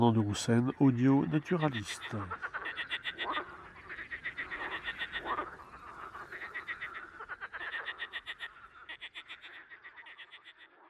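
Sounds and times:
speech: 0.0s - 2.9s
Marsh frog evening chorus at a small pond in rain: 0.0s - 10.8s.

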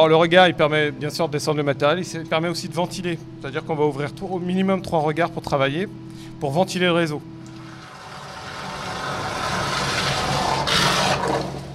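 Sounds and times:
speech: 0.0s - 7.4s
deep engine-like drone: 0.0s - 11.7s
suction pipe pumping grease out of a sewer network: 7.4s - 11.7s.

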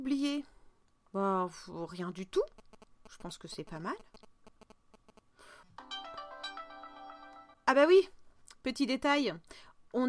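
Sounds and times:
speech: 0.0s - 4.1s, 7.7s - 10.0s
phone ringtone with beeps and layered electronic melodic tune: 5.8s - 7.6s.

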